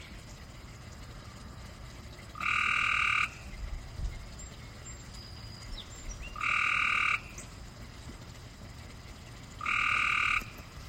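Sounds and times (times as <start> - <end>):
Cope's gray treefrog Hyla chrysoscelis calling in Maryland USA: 2.4 - 3.6, 6.2 - 7.5, 9.6 - 10.6.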